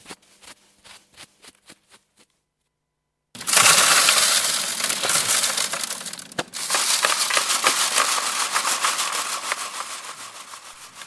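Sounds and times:
excavation tools scraping and crushing soil: 3.4s - 11.0s
digging tools tapping at an archaeological excavation site: 4.8s - 11.0s.

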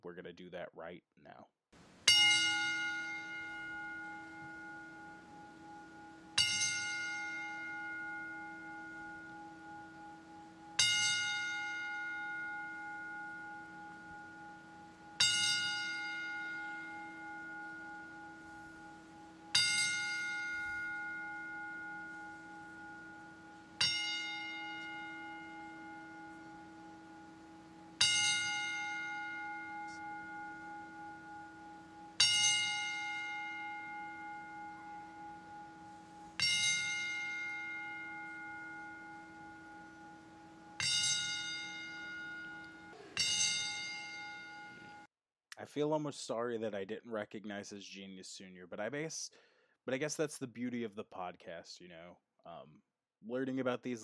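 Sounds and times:
speech: 0.1s - 2.0s, 45.6s - 54.0s
single bell tolling as a ten-bell salute of respect: 2.1s - 14.6s, 15.2s - 45.1s.

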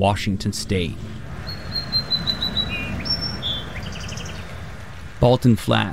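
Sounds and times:
speech: 0.0s - 1.2s, 5.2s - 5.9s
low rumbling background noise: 0.0s - 5.9s
song sparrow singing on Vashon Highway in Washington State: 0.7s - 5.2s.

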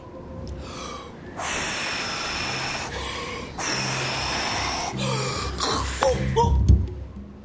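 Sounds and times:
several people blowing hard imitating wind: 1.4s - 6.0s.

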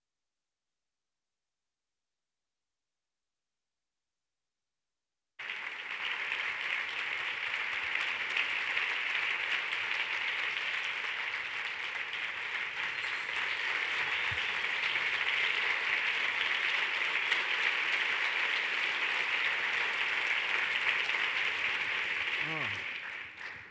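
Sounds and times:
audience applauding in a standing ovation: 5.4s - 23.6s.

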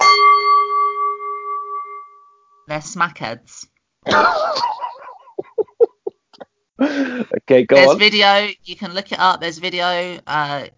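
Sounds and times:
bell strike rung to claim a point: 0.0s - 2.6s
speech: 2.7s - 4.8s, 6.9s - 10.7s
laughter: 4.1s - 6.1s, 6.8s - 8.0s.

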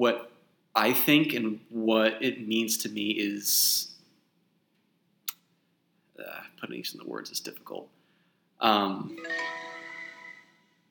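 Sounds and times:
speech: 0.0s - 3.9s, 6.2s - 8.0s, 8.6s - 9.7s
cell phone notification chime: 9.1s - 10.7s.

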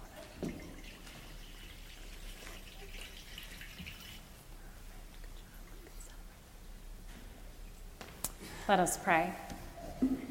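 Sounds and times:
water poured into a baptismal font during a church baptism: 0.2s - 4.4s
speech: 8.7s - 10.1s.

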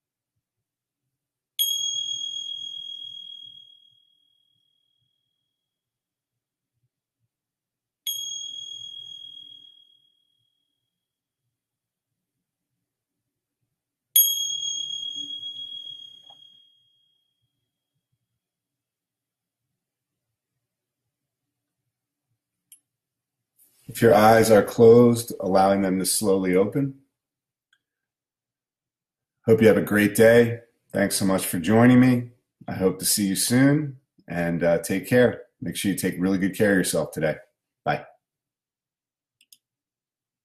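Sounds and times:
meditation bell ringing at end of meditation: 1.6s - 5.4s, 8.1s - 10.8s, 14.2s - 17.4s
speech: 23.9s - 27.0s, 29.5s - 38.1s.

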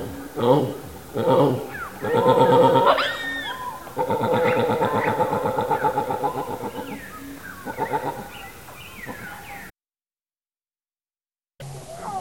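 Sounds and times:
juvenile white-backed vulture begging for food with nasal wavering calls: 0.0s - 9.7s.

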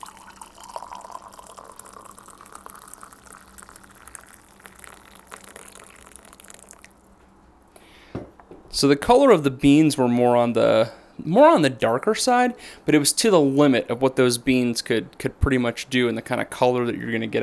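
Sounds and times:
coffee being poured into a coffee brewer: 0.0s - 7.2s
speech: 8.8s - 17.4s.

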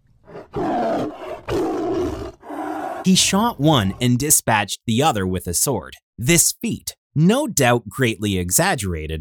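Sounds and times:
tiger roaring: 0.2s - 4.1s
speech: 3.0s - 9.1s.

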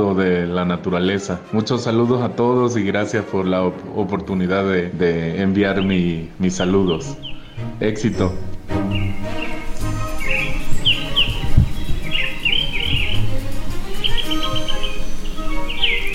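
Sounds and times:
speech: 0.0s - 8.5s
birds singing: 5.5s - 16.1s.

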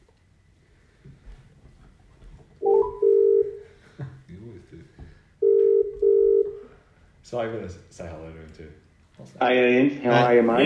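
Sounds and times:
faint hum: 0.0s - 10.6s
telephone line outgoing call tone: 2.6s - 3.6s, 5.4s - 6.8s
speech: 7.3s - 10.6s.

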